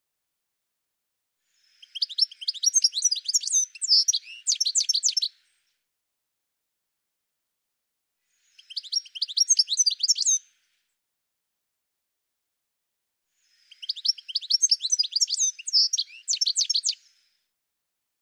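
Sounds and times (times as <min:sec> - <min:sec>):
bird chirping and twittering: 0:01.6 - 0:05.6, 0:08.4 - 0:10.4, 0:13.4 - 0:17.2.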